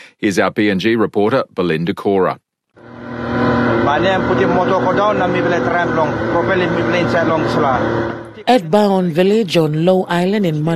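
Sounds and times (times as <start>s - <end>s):
speech: 0.2s - 2.4s, 3.3s - 10.7s
boat motor straining through floating pumice rock at Baon Village, Papua New Guinea: 2.8s - 9.0s
indistinct voices: 2.8s - 9.4s.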